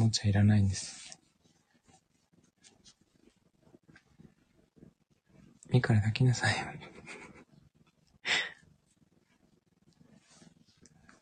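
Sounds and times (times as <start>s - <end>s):
speech: 0.1s - 1.0s, 5.7s - 6.9s
cat purring on a person's lap: 0.7s - 11.1s.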